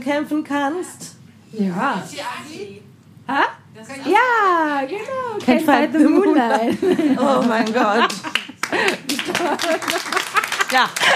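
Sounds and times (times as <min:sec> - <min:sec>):
speech: 0:00.0 - 0:11.1
laughter: 0:06.0 - 0:11.1
one person applauding with sharp hand claps: 0:07.4 - 0:11.1.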